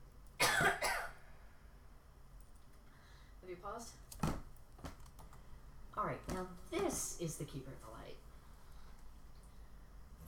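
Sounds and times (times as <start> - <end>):
person coughing: 0.4 - 1.2
speech: 3.5 - 4.3, 6.0 - 8.3.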